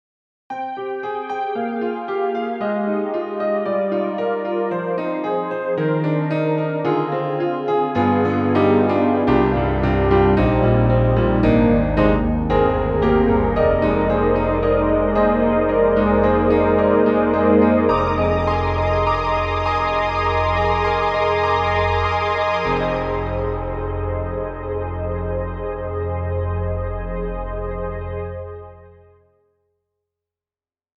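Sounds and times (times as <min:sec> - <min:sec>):
warm piano: 0:00.6 - 0:29.0
warm synth pad: 0:07.2 - 0:28.9.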